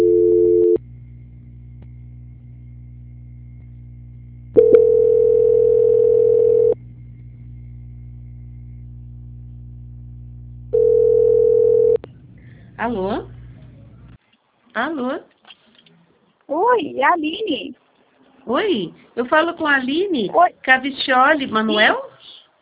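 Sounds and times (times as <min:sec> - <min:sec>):
telephone beep during a call transfer: 0:00.0 - 0:00.8, 0:04.6 - 0:06.8, 0:10.8 - 0:12.0
constant low hum on the telephone line: 0:00.0 - 0:14.6
speech: 0:17.0 - 0:17.8, 0:18.5 - 0:22.1.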